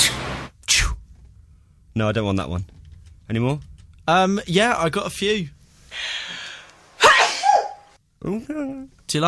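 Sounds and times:
speech: 2.0 - 6.1, 8.2 - 9.2
high-pitched sneeze played from a video: 7.0 - 7.9.

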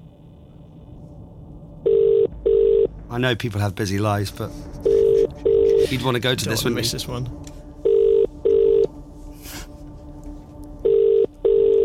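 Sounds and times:
telephone ringback tone: 1.9 - 2.9, 7.9 - 8.9, 10.8 - 11.8
speech: 3.1 - 4.9, 5.9 - 7.5.

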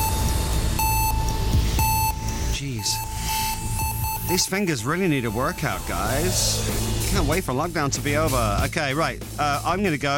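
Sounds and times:
electronic timer beeping: 0.0 - 6.6
continuous low rumble: 0.0 - 8.7
speech: 4.3 - 10.1.

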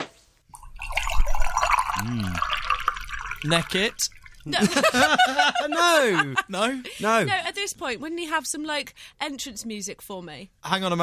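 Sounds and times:
eggnog glugging and splashing into a glass: 0.5 - 4.7
speech: 2.0 - 2.6, 3.4 - 11.0
laughter: 4.5 - 7.4.

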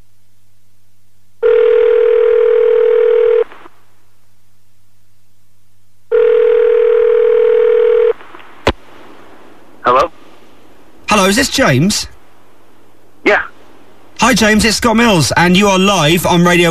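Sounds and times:
telephone ringing tone: 1.4 - 3.5, 6.1 - 8.2
speech: 11.2 - 12.1, 14.2 - 16.6.

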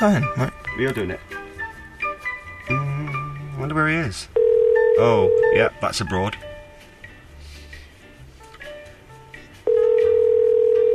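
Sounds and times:
speech: 0.0 - 1.4, 3.6 - 4.4, 5.0 - 6.5
quiet noise: 0.0 - 10.9
international phone ringtone single-pitched tone through the line: 4.4 - 5.6, 9.7 - 10.9.

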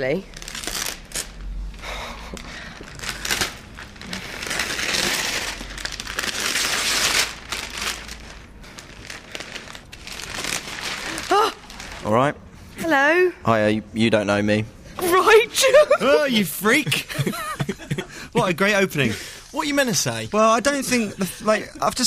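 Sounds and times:
speech: 0.0 - 0.4, 12.1 - 12.4, 13.5 - 14.8, 15.6 - 17.3, 18.4 - 22.0
wrapping crinkling and tearing as a large package holding a person is unwrapped: 0.3 - 1.5, 2.2 - 12.2
laughter: 15.5 - 19.0.

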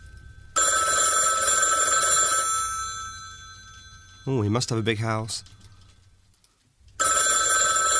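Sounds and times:
old-fashioned telephone bell ringing: 0.0 - 4.6, 7.0 - 7.9
speech: 4.2 - 5.6.

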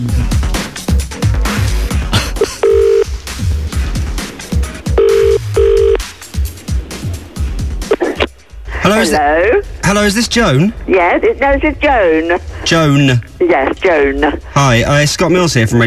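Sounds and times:
busy loud music-like background: 0.0 - 15.8
phone line ringing out: 2.6 - 3.1, 4.9 - 6.0
speech: 8.9 - 15.8.

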